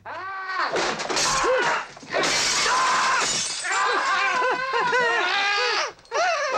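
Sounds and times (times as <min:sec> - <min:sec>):
people shouting and grunting: 0:00.6 - 0:06.5
ornaments and furniture smashing during a fight: 0:00.7 - 0:04.1.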